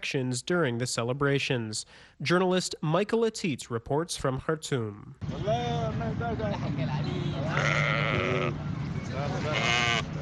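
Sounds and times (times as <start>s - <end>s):
speech: 0.0s - 10.1s
crowd murmur at roadside livestock market: 6.3s - 10.2s
sheep bleating at roadside livestock market: 7.4s - 8.6s, 9.4s - 10.1s.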